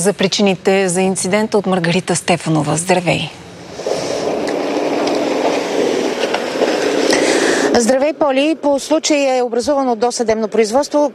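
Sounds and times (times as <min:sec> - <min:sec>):
speech: 0:00.0 - 0:03.4, 0:07.8 - 0:11.1
train rolling past over a railway crossing: 0:02.8 - 0:09.8
faint metallic clicks and rattles from train wheels: 0:03.6 - 0:08.1.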